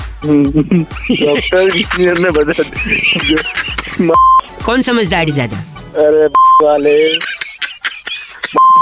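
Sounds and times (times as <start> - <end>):
speech: 0.2 - 7.3
laughter: 0.4 - 4.9, 6.6 - 8.8
phone dialing beeps: 6.4 - 6.7, 8.6 - 8.8.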